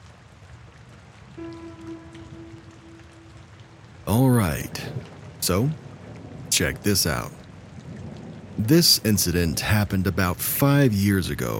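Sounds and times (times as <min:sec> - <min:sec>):
steady rain pattering on a surface: 0:00.0 - 0:11.5
speech: 0:01.4 - 0:02.7, 0:04.1 - 0:05.9, 0:06.6 - 0:07.4, 0:08.6 - 0:11.5
sustained buzzy droning tone: 0:01.4 - 0:05.8.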